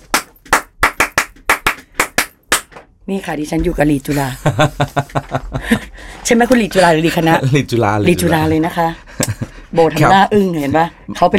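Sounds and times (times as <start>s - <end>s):
sharp hand claps in a cheer-style rhythm: 0.0s - 2.9s
speech: 3.1s - 11.3s
laughter: 4.4s - 6.0s, 9.1s - 9.7s.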